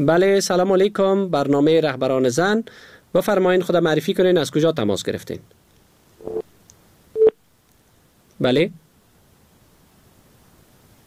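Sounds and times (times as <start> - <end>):
speech: 0.0 - 5.6, 8.4 - 8.8
telephone busy signal after a caller's line dropped: 6.2 - 6.4, 7.2 - 7.4.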